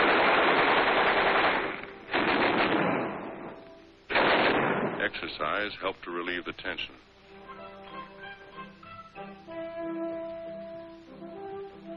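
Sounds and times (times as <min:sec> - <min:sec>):
machine guns being test-fired: 0:00.0 - 0:05.2
speech: 0:05.4 - 0:07.1.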